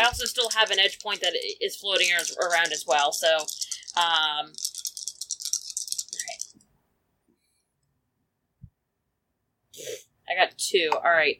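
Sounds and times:
dice rattling in a cup or hand: 0:00.0 - 0:06.6
speech: 0:00.1 - 0:04.7, 0:09.8 - 0:11.3.

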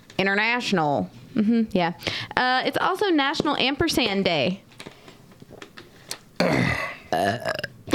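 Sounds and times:
speech: 0:00.2 - 0:04.6, 0:07.1 - 0:07.7
loud burp: 0:06.4 - 0:07.8.

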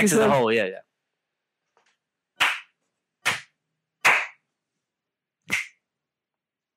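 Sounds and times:
speech: 0:00.0 - 0:00.9
finger snap: 0:02.4 - 0:04.4, 0:05.5 - 0:05.8
hand slaps: 0:02.4 - 0:04.4, 0:05.5 - 0:05.8.

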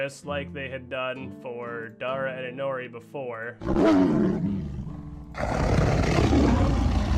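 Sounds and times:
speech: 0:00.0 - 0:04.7, 0:05.4 - 0:06.5
prowling big cats growling and roaring: 0:03.6 - 0:07.1.

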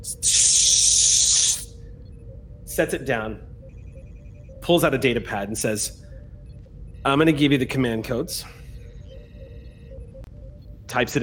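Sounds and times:
speech: 0:00.0 - 0:00.6, 0:02.8 - 0:03.5, 0:04.7 - 0:06.0, 0:07.0 - 0:08.6, 0:10.9 - 0:11.2
spray can sprayed over the top of a shoulder: 0:00.1 - 0:01.7.

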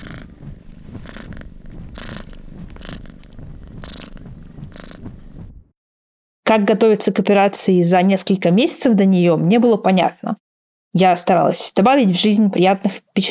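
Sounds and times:
cat purring held against a person's head on a sofa: 0:00.0 - 0:05.7
speech: 0:06.5 - 0:13.2.

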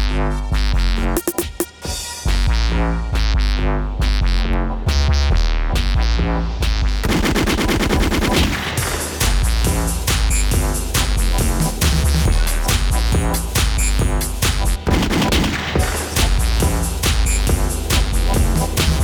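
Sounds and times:
pounding bass-heavy music track: 0:00.0 - 0:19.0
DJ-style gunshot sound effects: 0:07.0 - 0:19.0.

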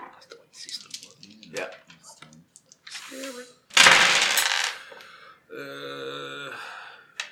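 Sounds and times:
dice rattling across a hard tabletop: 0:00.6 - 0:05.0
speech: 0:01.5 - 0:01.8.

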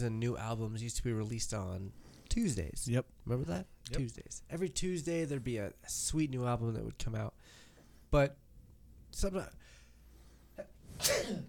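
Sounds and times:
speech: 0:00.0 - 0:08.4, 0:09.1 - 0:09.8, 0:10.6 - 0:11.4
person sneezing: 0:10.6 - 0:11.4.

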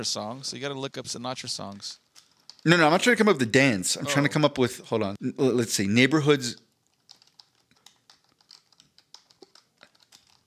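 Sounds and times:
speech: 0:00.0 - 0:02.0, 0:02.6 - 0:06.6
typing on a computer keyboard: 0:02.2 - 0:02.7, 0:06.6 - 0:10.4.

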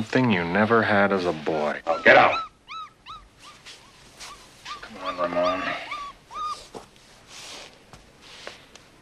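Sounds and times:
speech: 0:00.0 - 0:02.5
puppy whining: 0:01.9 - 0:06.8.

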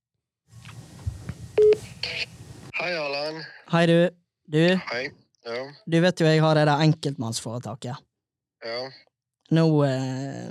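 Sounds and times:
telephone keypad dialing beep tones: 0:01.6 - 0:01.8
speech: 0:02.8 - 0:10.4.

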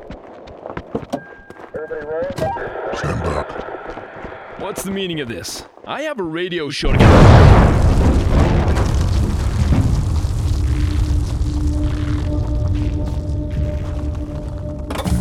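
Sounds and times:
speech: 0:01.9 - 0:03.6, 0:04.6 - 0:08.1
heavy crashes: 0:06.9 - 0:14.0
building gas explosion: 0:06.9 - 0:14.2
roaring rumble of debris from a collapsing building: 0:06.9 - 0:14.9.

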